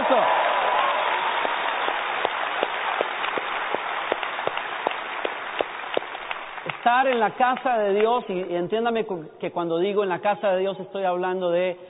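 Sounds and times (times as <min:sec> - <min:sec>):
faint cheering: 0:00.0 - 0:02.0
congregation applauding: 0:00.0 - 0:07.8
sharper claps beating out a regular rhythm: 0:01.0 - 0:08.2
speech: 0:06.9 - 0:11.8.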